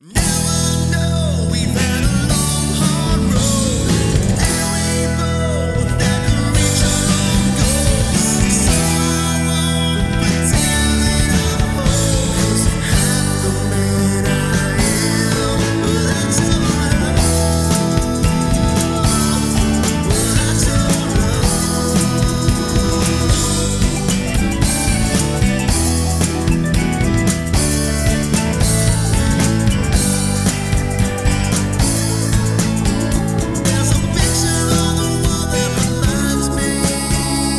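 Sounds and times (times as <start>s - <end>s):
karaoke full mix with vocal harmonies: 0.0s - 37.5s.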